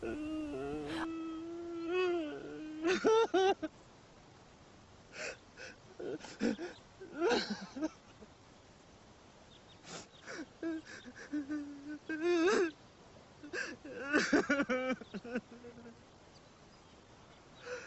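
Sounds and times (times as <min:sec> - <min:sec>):
man sobbing bitterly with his face pressed against a stone: 0:00.0 - 0:03.7, 0:05.2 - 0:08.0, 0:10.2 - 0:12.7, 0:13.4 - 0:16.0, 0:17.6 - 0:17.8.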